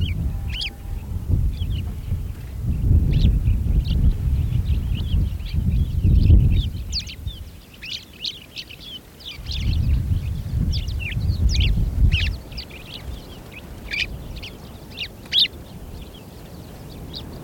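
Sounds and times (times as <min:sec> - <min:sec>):
Fischer's sparrow-lark calling: 0:00.0 - 0:17.4
gusts of low rumbling wind: 0:00.0 - 0:17.4.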